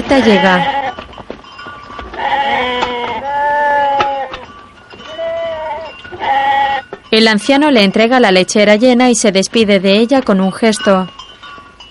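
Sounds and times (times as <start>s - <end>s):
sheep bleating in a pen during milking: 0.0s - 1.0s, 2.1s - 4.5s, 5.1s - 6.9s
speech: 0.1s - 0.8s, 7.1s - 11.2s.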